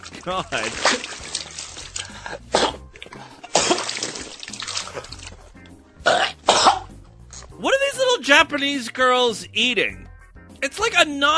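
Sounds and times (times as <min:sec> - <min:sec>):
speech: 0:00.0 - 0:01.3, 0:02.3 - 0:03.3, 0:07.6 - 0:10.0, 0:10.6 - 0:11.3
gasping for air: 0:02.0 - 0:03.6
man drowning in vomit choking and coughing: 0:02.1 - 0:04.2, 0:06.0 - 0:07.0.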